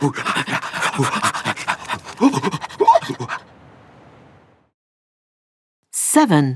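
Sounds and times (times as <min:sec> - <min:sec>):
speech: 0:00.0 - 0:01.6, 0:06.2 - 0:06.5
running sled dog team panting: 0:00.0 - 0:03.4.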